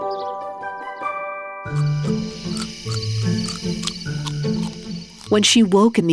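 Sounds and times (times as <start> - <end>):
speech: 1.7 - 4.7, 5.3 - 6.1
crickets chirping: 1.7 - 6.1.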